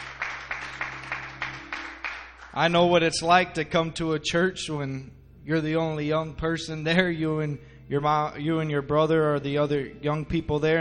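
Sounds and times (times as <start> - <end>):
rhythmic hand clapping at a church service: 0.0 - 2.7
low constant hum: 0.0 - 10.7
speech: 2.6 - 10.7.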